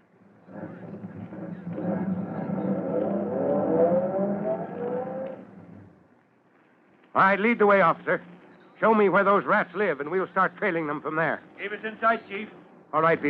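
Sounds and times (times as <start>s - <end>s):
car engine pulling up alongside a police car: 0.5s - 6.0s
speech: 7.2s - 13.2s.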